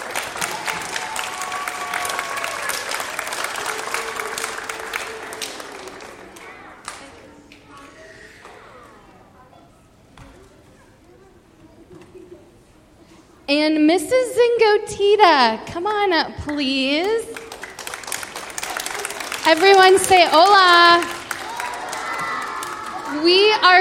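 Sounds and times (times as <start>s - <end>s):
crowd clapping in a room: 0.0s - 7.4s, 17.0s - 23.8s
faint murmuring voices in a room: 3.6s - 13.5s
speech: 13.8s - 17.3s, 19.4s - 21.1s, 23.2s - 23.8s.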